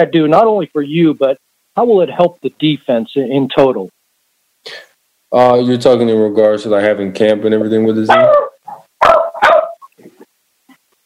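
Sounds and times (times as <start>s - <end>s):
speech: 0.0s - 4.0s, 4.6s - 8.5s
dog barking: 8.1s - 9.9s.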